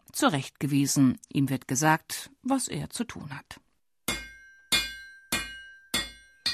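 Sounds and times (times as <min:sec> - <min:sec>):
speech: 0:00.1 - 0:03.6
blacksmith's hammer striking metal: 0:04.1 - 0:06.5.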